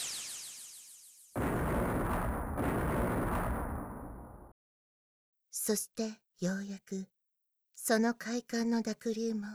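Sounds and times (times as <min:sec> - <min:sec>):
distant explosions: 0:01.4 - 0:04.5
speech: 0:05.6 - 0:07.2, 0:07.8 - 0:09.5.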